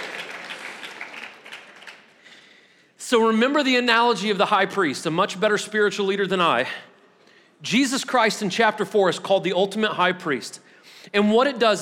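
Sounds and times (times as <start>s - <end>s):
audience clapping: 0.0s - 2.5s
speech: 3.1s - 6.9s, 7.6s - 11.7s.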